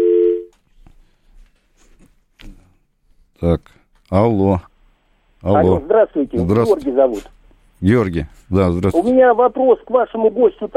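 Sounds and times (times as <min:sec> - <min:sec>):
telephone line tone on an incoming call to a call-in line: 0:00.0 - 0:00.5
speech: 0:03.4 - 0:04.7, 0:05.4 - 0:10.7.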